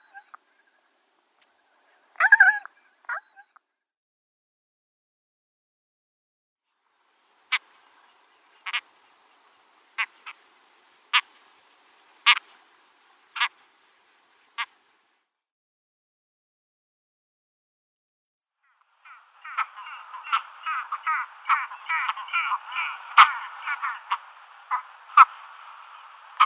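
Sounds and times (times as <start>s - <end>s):
great skua giving a harsh grating call at the nest: 0.0s - 3.6s, 7.4s - 15.0s, 18.6s - 26.4s
speech: 22.3s - 23.2s, 23.8s - 24.1s.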